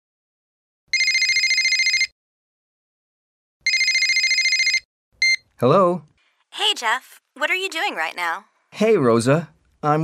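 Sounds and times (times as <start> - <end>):
telephone ringing with rapid trilling bell: 0.9 - 2.1, 3.6 - 5.4
speech: 5.6 - 10.0.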